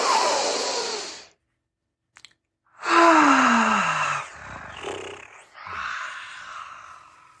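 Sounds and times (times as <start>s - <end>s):
group taking a deep breath together: 2.8s - 7.3s.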